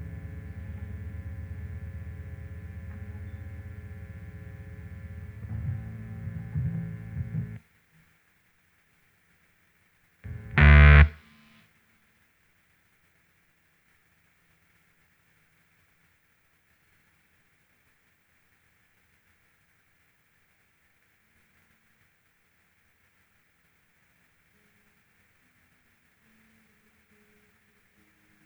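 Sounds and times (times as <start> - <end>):
M201 bass: 0.0 - 7.6, 10.3 - 11.2.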